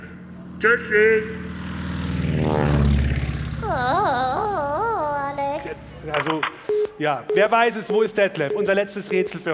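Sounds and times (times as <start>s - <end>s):
propeller plane engine droning in flight: 0.0s - 6.1s
speech: 0.6s - 1.5s, 6.0s - 9.5s.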